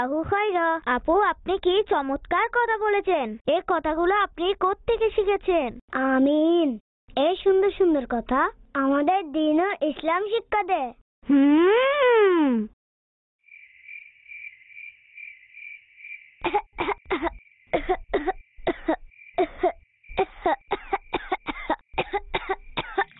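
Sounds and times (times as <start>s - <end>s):
speech: 0.0s - 12.8s, 16.4s - 20.7s
person coughing: 16.4s - 23.1s.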